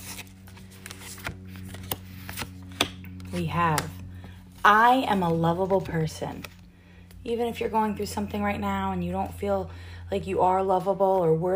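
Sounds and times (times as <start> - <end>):
deck of cards being shuffled: 0.0 - 6.7
faint steady low hum: 0.0 - 11.5
speech: 3.3 - 4.0, 4.6 - 6.5, 7.2 - 11.5.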